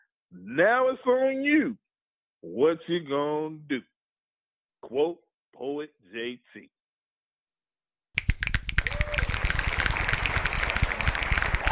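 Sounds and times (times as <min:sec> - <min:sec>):
speech: 0:00.3 - 0:01.8, 0:02.4 - 0:03.9, 0:04.8 - 0:06.8
crowd of fingers snapping: 0:08.2 - 0:11.7.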